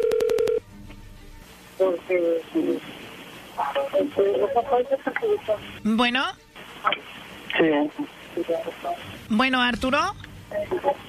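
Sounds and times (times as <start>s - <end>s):
telephone keypad tones: 0.0s - 0.6s
speech: 1.8s - 3.0s, 3.6s - 11.0s.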